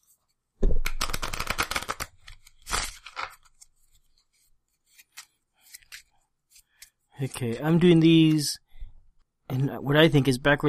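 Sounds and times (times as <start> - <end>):
soft taps and playing card handling: 0.6 - 3.8, 4.8 - 8.5
deck of playing cards being riffle-shuffled: 0.8 - 8.5
speech: 7.2 - 8.6, 9.5 - 10.6.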